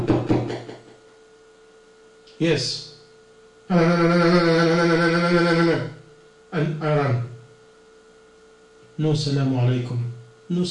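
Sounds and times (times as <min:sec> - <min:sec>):
firm knocking on a door: 0:00.0 - 0:00.9
speech: 0:02.4 - 0:02.9, 0:03.7 - 0:07.3, 0:09.0 - 0:10.7.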